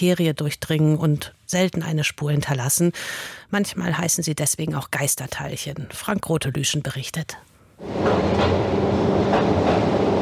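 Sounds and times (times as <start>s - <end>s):
speech: 0.0s - 10.0s
small inclined rail car descending slowly into a tunnel: 7.8s - 10.2s.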